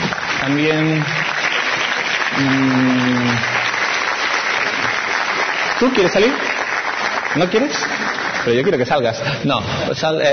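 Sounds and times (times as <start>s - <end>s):
audience applause for a volunteer on stage: 0.0s - 9.2s
speech: 0.4s - 1.3s, 2.4s - 3.6s, 5.8s - 6.5s, 7.3s - 10.3s.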